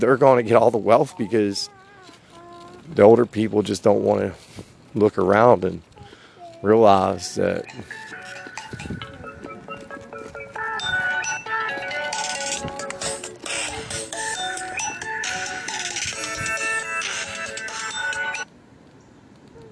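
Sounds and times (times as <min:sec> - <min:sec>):
speech: 0:00.0 - 0:01.8, 0:02.9 - 0:05.9, 0:06.6 - 0:08.0
loud electronic phone ringtone chiming melody: 0:07.6 - 0:18.5.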